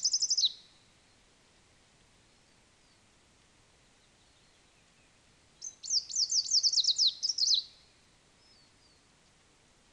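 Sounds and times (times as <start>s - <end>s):
greenish warbler subspecies viridanus song: 0.0s - 1.4s, 2.1s - 9.9s.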